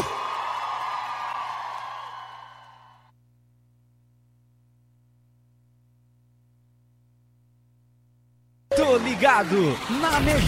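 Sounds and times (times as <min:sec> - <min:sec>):
large audience shouting: 0:00.0 - 0:02.9, 0:08.7 - 0:10.4
speech: 0:09.0 - 0:10.4.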